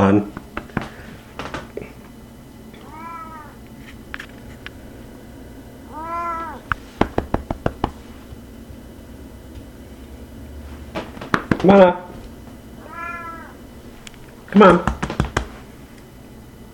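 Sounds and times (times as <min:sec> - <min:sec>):
speech: 0:00.0 - 0:00.4, 0:11.6 - 0:12.0, 0:14.5 - 0:15.0
low hum: 0:00.3 - 0:14.7
domestic cat meowing: 0:02.8 - 0:03.6, 0:05.9 - 0:06.7, 0:12.8 - 0:13.6.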